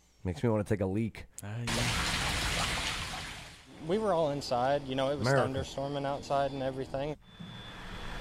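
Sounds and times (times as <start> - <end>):
speech: 0.2 - 2.1, 3.8 - 7.2
running water: 1.7 - 4.5.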